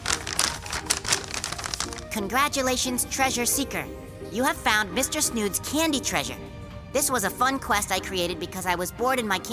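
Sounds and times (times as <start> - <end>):
paper note crinkling as it is picked up from chocolate gold coins: 0.0 - 2.2
speech: 2.1 - 9.5.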